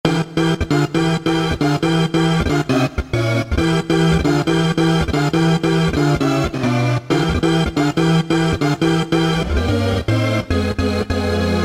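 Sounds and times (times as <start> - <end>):
lo-fi rave synth music from factory patches: 0.0 - 11.6.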